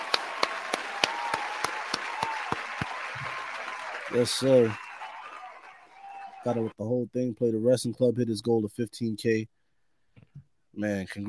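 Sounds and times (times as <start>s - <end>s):
round of applause: 0.0s - 6.7s
speech: 4.1s - 4.8s, 6.4s - 9.6s, 10.8s - 11.2s.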